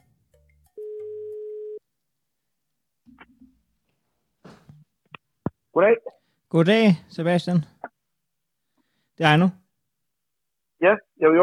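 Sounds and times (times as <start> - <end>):
telephone ringback tone: 0.8 - 1.8
speech: 5.8 - 7.7, 9.2 - 9.6, 10.8 - 11.4.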